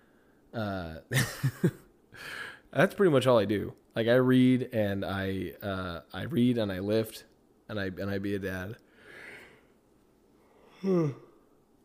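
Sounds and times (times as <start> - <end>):
speech: 0.5 - 8.8, 10.8 - 11.2
short voiced yawn: 10.7 - 11.5.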